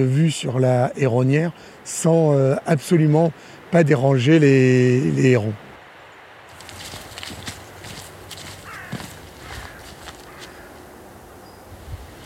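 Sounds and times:
speech: 0.0s - 5.6s
outdoor noise: 0.0s - 12.2s
crunchy footsteps: 6.5s - 12.2s
carrion crow cawing: 7.2s - 11.2s.

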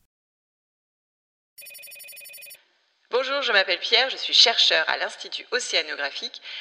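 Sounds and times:
classic telephone bell ringing: 1.6s - 2.6s
speech: 3.1s - 6.6s.

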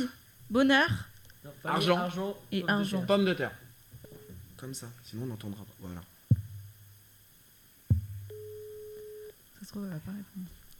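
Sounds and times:
speech: 0.0s - 3.6s, 4.6s - 6.1s, 9.6s - 10.6s
soft thump: 6.3s - 6.9s, 7.9s - 8.3s
telephone ringback tone during outgoing call: 8.3s - 9.3s.

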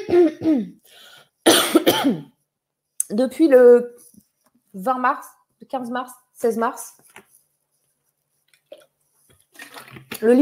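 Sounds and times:
person coughing: 0.0s - 0.8s, 1.4s - 2.4s
speech: 0.1s - 2.2s, 3.1s - 4.0s, 4.7s - 7.0s, 10.2s - 10.4s.

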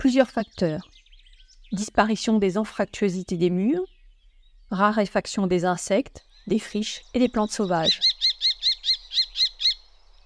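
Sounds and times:
speech: 0.0s - 1.0s, 1.7s - 4.0s, 4.7s - 8.2s
house sparrow chirping: 0.0s - 10.2s.

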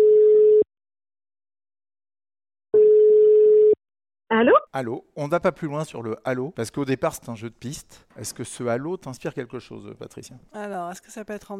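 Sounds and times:
telephone ringback tone on outgoing call: 2.8s - 3.8s
speech: 4.4s - 11.5s.

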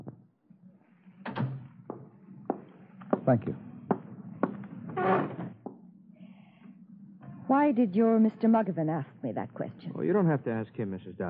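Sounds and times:
door swinging shut with a solid thunk and rattle: 1.2s - 1.7s, 4.9s - 5.6s
speech: 3.3s - 3.7s, 7.6s - 11.2s.

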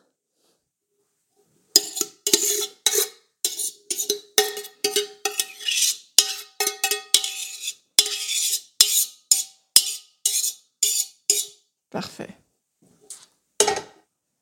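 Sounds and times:
utensil clinking and scraping against a baking dish while spooning apple and little gem lettuce: 1.7s - 11.6s.

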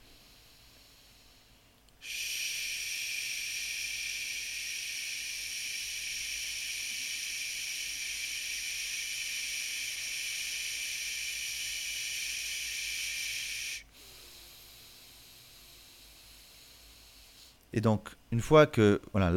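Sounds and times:
sustained sh hissing exhalation through the lips in a breathing exercise: 0.0s - 17.6s
speech: 17.8s - 19.3s.

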